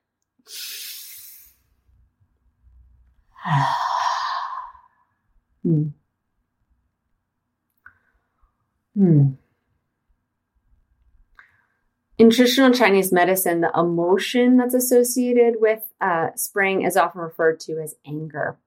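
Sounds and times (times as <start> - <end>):
person taking a deep breath: 0.5 - 1.7, 3.3 - 5.1
brief murmured vocal sounds: 3.4 - 4.9
speech: 5.7 - 6.0, 9.0 - 9.4, 12.2 - 18.6.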